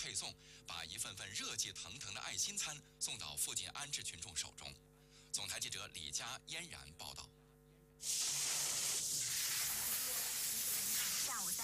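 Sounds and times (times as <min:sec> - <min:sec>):
speech: 0:00.0 - 0:07.4, 0:08.0 - 0:08.6
running water from a tap: 0:08.0 - 0:11.6.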